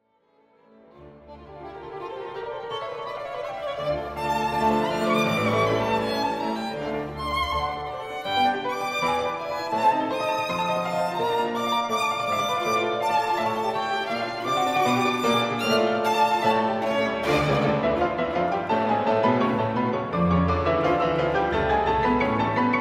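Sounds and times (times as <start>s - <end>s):
violin in a concerto allegro molto: 0.0s - 22.7s
fortepiano in a concerto allegro molto: 0.1s - 22.7s
orchestra playing a concerto allegro molto: 0.5s - 22.7s.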